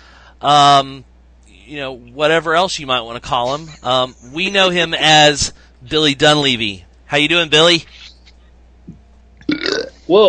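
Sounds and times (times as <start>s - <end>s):
speech: 0.4s - 1.1s, 1.7s - 8.0s, 10.1s - 10.2s
loud burp: 9.4s - 10.0s.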